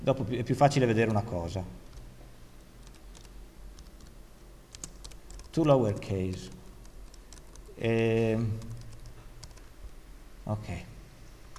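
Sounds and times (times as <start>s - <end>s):
speech: 0.0s - 1.9s, 5.6s - 6.6s, 7.8s - 8.8s, 10.5s - 10.9s
low hum: 0.0s - 11.5s
typing on a computer keyboard while editing code: 2.8s - 9.7s.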